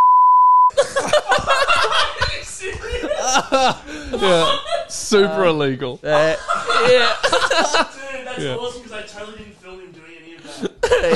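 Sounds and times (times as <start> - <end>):
steady electronic censor beep: 0.0 - 0.7
people chuckling and laughing: 0.7 - 5.4, 6.1 - 8.3, 10.4 - 11.1
speech: 0.7 - 11.1.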